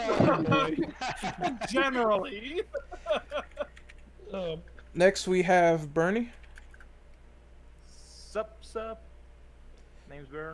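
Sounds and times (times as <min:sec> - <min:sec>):
laughter: 0:00.0 - 0:03.8
low steady hum: 0:00.0 - 0:10.5
speech: 0:00.1 - 0:03.5, 0:04.3 - 0:06.4, 0:08.4 - 0:09.1, 0:10.1 - 0:10.5
typing on a computer keyboard: 0:03.4 - 0:04.0, 0:06.3 - 0:06.9.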